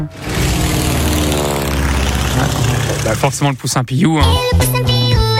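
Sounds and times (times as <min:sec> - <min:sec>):
speech: 0:00.0 - 0:00.3, 0:02.4 - 0:05.2
airplane engine drone: 0:00.0 - 0:03.3
airplane propeller buzz: 0:00.0 - 0:03.4.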